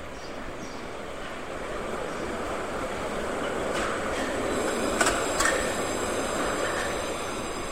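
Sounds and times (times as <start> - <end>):
tram wheels rumbling on rails: 0.0 - 7.7.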